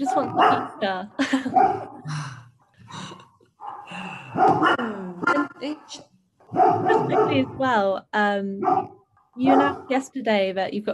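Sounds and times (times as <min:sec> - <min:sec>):
dogs barking, yipping and whining: 0:00.0 - 0:00.8, 0:01.4 - 0:02.0, 0:03.6 - 0:05.6, 0:06.4 - 0:07.6, 0:08.6 - 0:09.9
speech: 0:00.0 - 0:02.2, 0:04.0 - 0:10.9.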